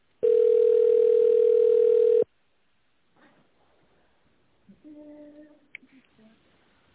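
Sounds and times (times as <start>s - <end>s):
telephone ringback tone while a call is being transferred: 0.2s - 2.3s.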